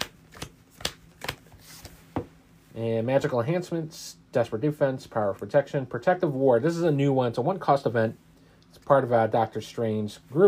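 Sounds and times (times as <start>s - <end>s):
playing cards drawn from a deck during a card game: 0.0s - 2.2s
speech: 2.8s - 8.2s, 8.9s - 10.4s.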